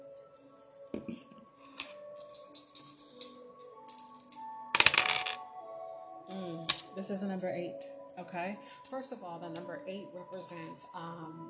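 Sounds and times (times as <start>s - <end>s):
dice clattering and tumbling across a surface: 1.8s - 5.4s, 6.7s - 6.9s
speech: 7.1s - 11.4s.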